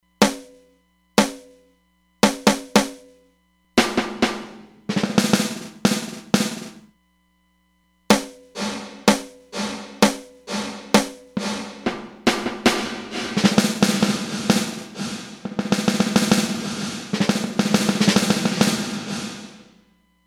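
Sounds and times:
snare drum on Roland DEP-5: 0.2 - 0.6, 1.2 - 1.6, 2.2 - 3.1, 3.8 - 6.8, 8.1 - 19.8.

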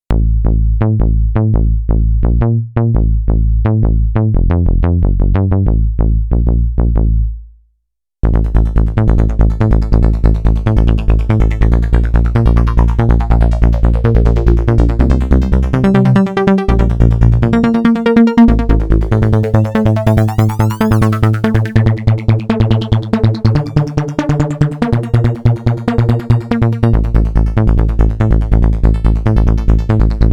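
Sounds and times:
techno sequenced synth bass: 0.1 - 7.5, 8.2 - 30.3.

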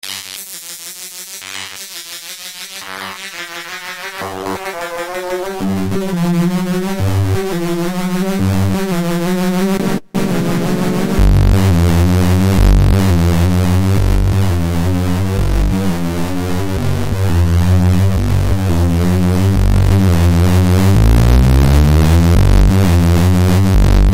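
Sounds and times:
drum and bass breakbeat: 0.0 - 24.1.

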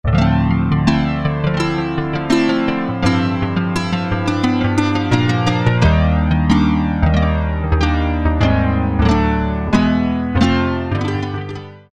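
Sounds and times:
acoustic guitar sound on Roland MKS-50 synthesizer: 0.0 - 11.9.

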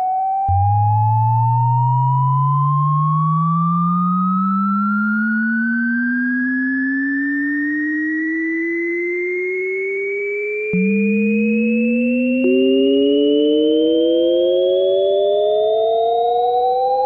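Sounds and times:
Roland Juno-106 factory preset synthesizer sound: 0.1 - 8.6, 9.1 - 16.9.

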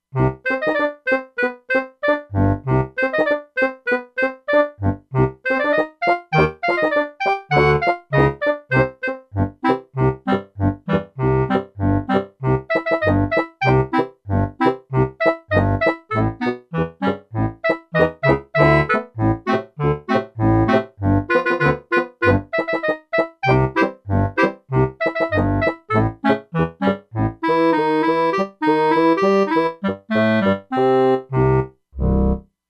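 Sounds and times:
E-mu Proteus-2 clarinet and bassoon factory preset: 0.2 - 32.4.

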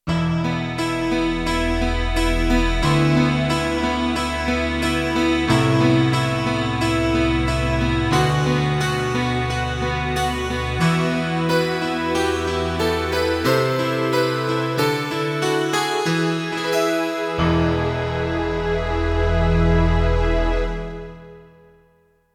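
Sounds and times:
MIDI guitar on a Roland D-70: 0.1 - 21.4.

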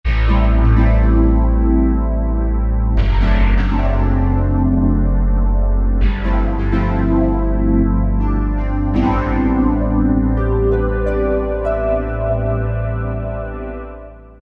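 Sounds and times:
Generalmusic Equinox synthesizer pluck pad: 0.1 - 14.3.

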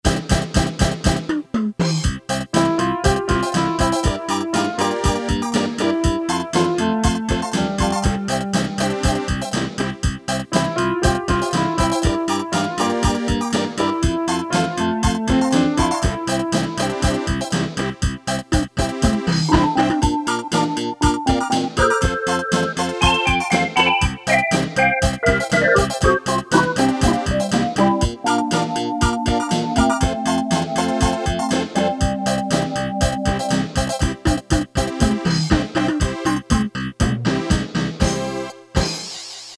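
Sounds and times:
Casio CT-370 keyboard rock rhythm: 0.1 - 39.3.

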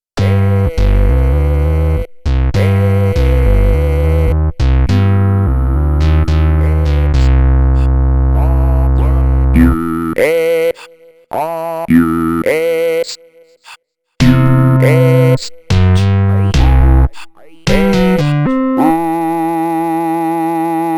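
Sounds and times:
synthesizer voice kit: 0.2 - 4.4, 5.4 - 10.4, 11.4 - 13.3, 14.2 - 20.9.

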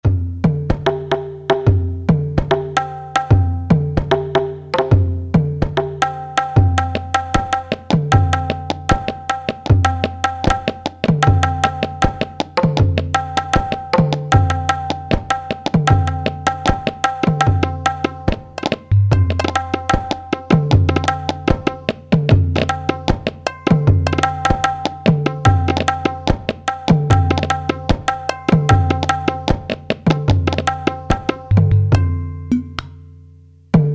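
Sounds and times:
synthesizer Indian percussion preset: 0.0 - 32.9.

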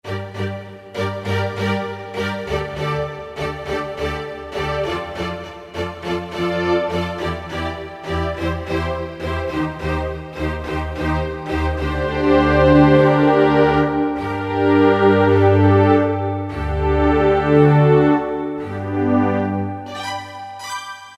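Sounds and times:
bowed strings preset demo: 0.0 - 21.1.

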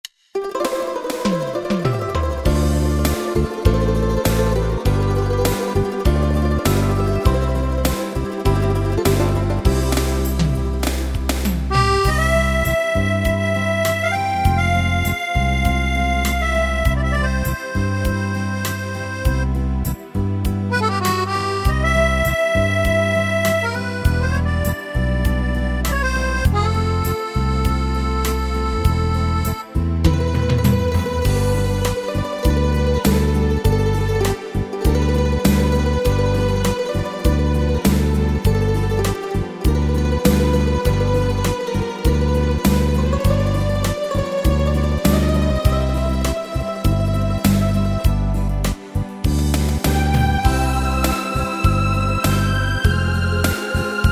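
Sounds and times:
Yamaha PSR-3000 eight-beat ballad style accompaniment: 0.6 - 54.1.

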